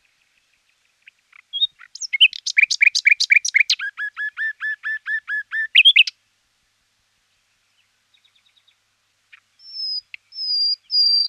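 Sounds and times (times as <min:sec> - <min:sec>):
common nightingale song with chirps slurred notes and pure whistles: 0:00.0 - 0:11.2.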